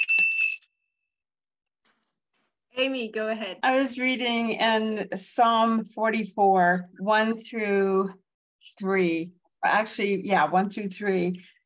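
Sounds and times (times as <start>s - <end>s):
bright high-pitched bell with scripture inscription ringing: 0.0s - 0.8s
speech: 2.8s - 11.5s.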